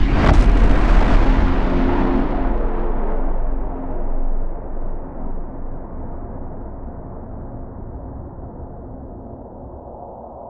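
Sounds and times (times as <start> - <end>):
singularity collapse effect: 0.0 - 5.8.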